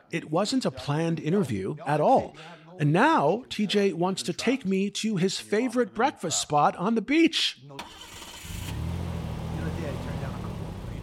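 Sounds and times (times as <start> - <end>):
speech: 0.1 - 8.1
car engine starting and running: 8.1 - 11.0.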